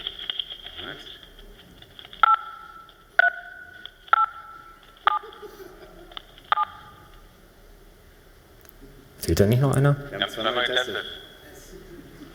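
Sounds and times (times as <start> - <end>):
hissy ordinary telephone connection: 0.0 - 8.6, 9.3 - 12.3
melody tapped out on phone keypad tones: 2.2 - 5.4, 6.2 - 7.1
laughter: 4.9 - 7.2
speech: 9.3 - 11.2.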